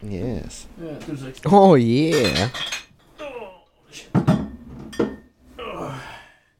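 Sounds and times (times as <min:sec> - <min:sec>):
speech: 0:00.0 - 0:02.8
beer bottles knocked together clinking: 0:02.0 - 0:03.1, 0:04.2 - 0:05.4.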